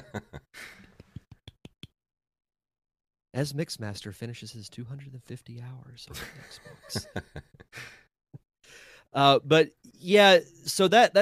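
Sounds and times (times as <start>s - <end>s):
laughter: 0.0s - 1.4s, 6.1s - 7.9s
speech: 3.4s - 8.0s, 9.1s - 11.2s
breathy exhale: 8.7s - 9.1s.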